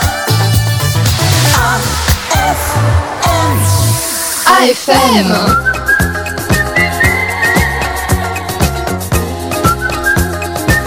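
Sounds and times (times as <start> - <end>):
upbeat rhythmic music track with steady bass and percussion: 0.0 - 10.8
speech: 4.6 - 5.7
person whistling a bright melody: 5.2 - 8.0, 9.6 - 10.8.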